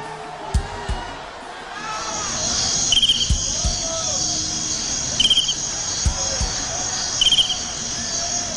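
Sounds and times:
crowd murmur: 0.0s - 8.5s
crickets chirping: 1.9s - 8.5s.

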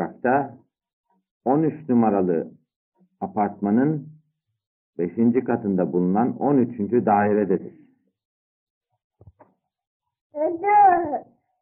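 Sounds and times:
speech: 0.2s - 0.6s, 1.4s - 2.6s, 3.2s - 4.2s, 5.0s - 7.8s, 10.4s - 11.3s
23-month-old toddler speaking: 10.4s - 11.2s.

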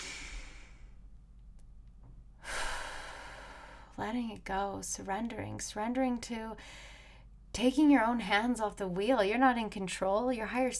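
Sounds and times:
long deep breath: 0.0s - 1.0s, 2.4s - 3.9s, 6.6s - 7.3s
speech: 4.0s - 7.0s, 7.6s - 10.7s.

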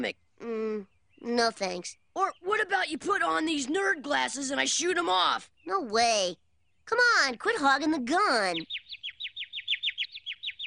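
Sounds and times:
speech: 0.0s - 8.8s
bird chirping: 0.0s - 10.6s.

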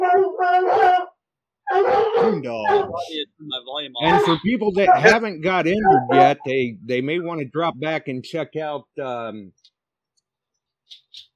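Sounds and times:
coonhounds baying and howling: 0.0s - 3.2s, 4.0s - 6.4s
speech: 2.3s - 9.6s.

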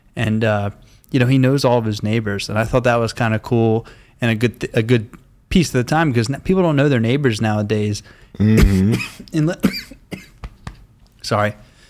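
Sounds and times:
speech: 0.2s - 10.0s, 11.2s - 11.6s
coughing fit with harsh rasping coughs: 8.4s - 10.4s.

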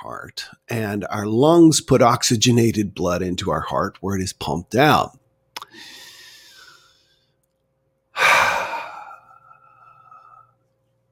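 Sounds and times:
speech: 0.0s - 6.0s
person taking slow deliberate deep breaths: 5.7s - 7.3s, 8.2s - 10.6s.

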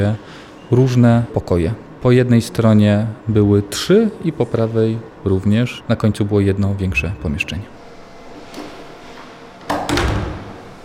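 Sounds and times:
speech: 0.0s - 7.8s
low steady room hum: 0.0s - 10.8s
heavy fire door creaking open and shutting: 8.4s - 10.8s.

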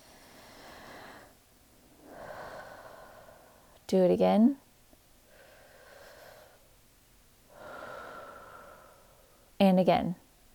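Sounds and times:
deep breaths during a guided relaxation exercise: 0.0s - 3.9s, 5.2s - 6.8s, 7.5s - 9.6s
speech: 3.9s - 4.6s, 9.7s - 10.2s.

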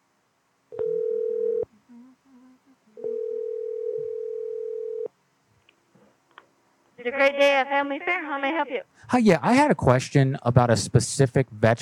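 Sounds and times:
telephone ringback tone while dialing a call to a store: 0.8s - 1.7s, 3.0s - 5.1s
speech: 7.0s - 11.8s.

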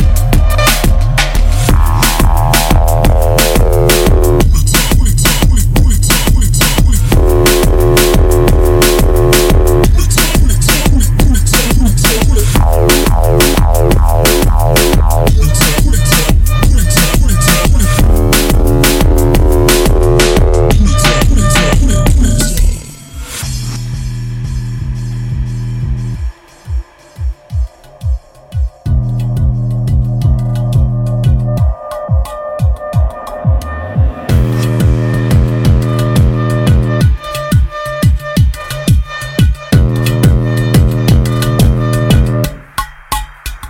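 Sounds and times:
repeating synth stabs: 0.0s - 4.6s, 7.0s - 24.6s, 33.8s - 37.1s, 39.8s - 42.6s
pounding four-on-the-floor kick drum in minimal techno: 0.0s - 22.4s, 25.3s - 37.2s, 39.7s - 42.6s
crisp ticking hi-hats: 0.0s - 22.8s, 23.4s - 43.6s.

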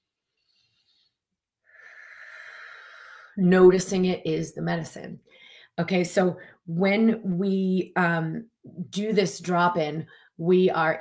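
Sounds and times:
slow exhale during guided breathing: 0.5s - 3.4s
speech: 3.4s - 10.9s.

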